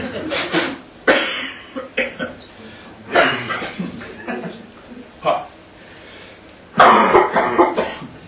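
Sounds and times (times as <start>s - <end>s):
person coughing after choking on flapjack: 0.3s - 2.2s, 3.1s - 3.9s, 6.8s - 8.1s.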